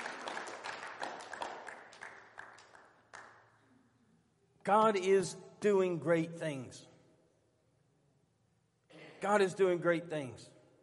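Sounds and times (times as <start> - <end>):
scattered hand clapping from a church audience: 0.0 - 3.6
speech: 4.7 - 6.9, 9.2 - 10.6.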